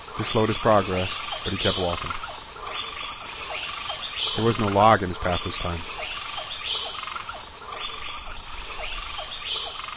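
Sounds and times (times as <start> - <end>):
high-pitched jungle insect drone: 0.0 - 9.9
jungle frogs croaking chirps: 0.0 - 9.9
speech: 0.2 - 2.3, 4.4 - 5.9.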